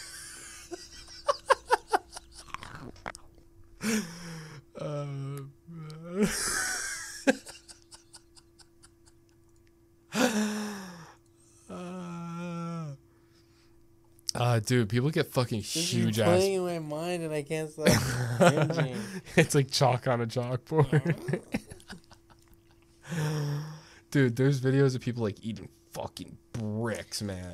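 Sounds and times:
laughter: 0.0s - 2.5s, 6.2s - 9.3s, 17.9s - 19.4s, 20.8s - 22.8s
steady low hum: 0.0s - 27.5s
person chewing corn starch with squeaky rubbery crunches: 2.4s - 3.4s
breathy vocal sounds: 3.8s - 6.3s, 10.2s - 13.0s, 23.0s - 23.9s
speech: 14.6s - 21.6s, 24.1s - 27.5s.

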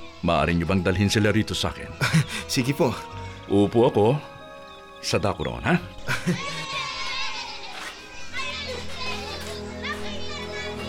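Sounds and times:
speech: 0.2s - 4.3s, 5.0s - 6.8s
laughter: 2.0s - 2.5s, 6.0s - 9.8s
children playing and chattering: 5.9s - 10.8s.

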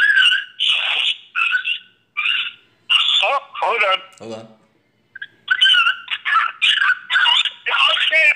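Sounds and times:
dog with its head stuck in a hole whining and yelping frantically: 0.0s - 3.3s, 5.2s - 8.2s
speech: 3.9s - 4.6s.

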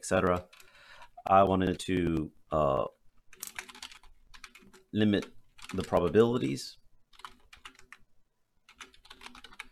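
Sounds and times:
speech: 0.0s - 0.6s, 1.2s - 3.0s, 4.9s - 6.8s
typing on a clacky computer keyboard: 0.2s - 2.3s, 3.3s - 6.2s, 7.1s - 8.0s, 8.7s - 9.7s.

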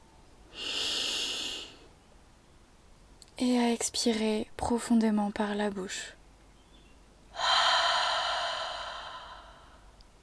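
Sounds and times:
long deep inhale through the nose during a guided meditation: 0.5s - 1.9s, 7.4s - 10.0s
speech: 3.4s - 6.2s.

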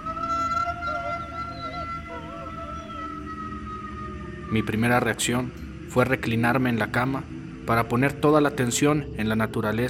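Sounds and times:
long eerie wavering moan: 0.0s - 5.6s
speech: 4.5s - 9.8s.

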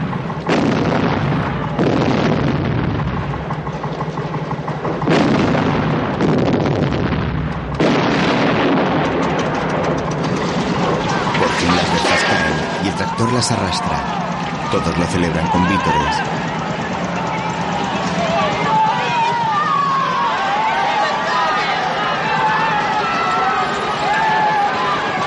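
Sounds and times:
grenade blasts hitting a wooden fence around a farm pond: 0.0s - 19.1s
dense continuous rumble and clatter: 0.0s - 25.2s
speech: 13.4s - 14.1s, 14.7s - 16.6s.

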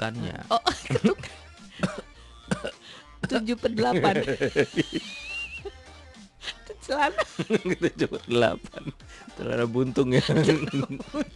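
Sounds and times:
speech: 0.0s - 1.2s, 3.3s - 5.2s, 6.9s - 11.3s
laughter: 0.7s - 1.4s, 3.8s - 5.8s, 6.4s - 9.0s, 10.0s - 11.3s
exaggerated elegant royal-style cough: 1.8s - 3.4s.

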